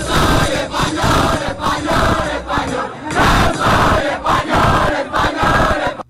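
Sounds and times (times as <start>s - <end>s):
crowd chanting in unison: 0.0s - 6.0s.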